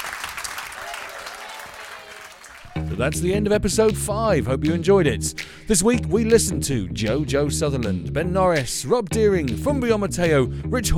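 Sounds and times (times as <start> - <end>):
audience applause: 0.0 - 2.9
speech: 2.8 - 10.9.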